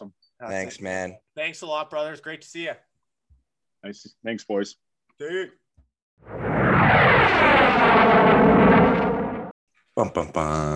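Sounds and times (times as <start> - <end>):
speech: 0.4 - 2.9, 3.8 - 5.6, 10.0 - 10.7
jet aircraft roaring overhead: 6.2 - 9.6.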